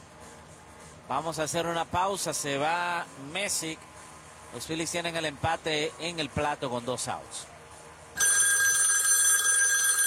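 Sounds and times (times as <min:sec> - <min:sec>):
speech: 0:01.1 - 0:03.9, 0:04.5 - 0:07.5
telephone bell ringing as a baseball bullpen call: 0:08.2 - 0:10.0.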